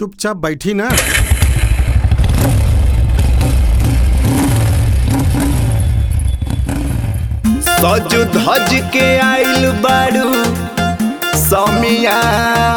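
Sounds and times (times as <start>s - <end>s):
speech: 0.0s - 1.4s, 7.8s - 10.8s, 11.4s - 12.7s
vehicle engine revving: 1.0s - 7.5s.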